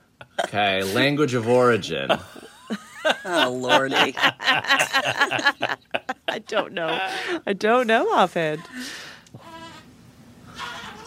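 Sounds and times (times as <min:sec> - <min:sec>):
laughter: 0:00.2 - 0:07.4
speech: 0:00.5 - 0:09.1
baby making goat-like bleating sounds: 0:09.4 - 0:09.8.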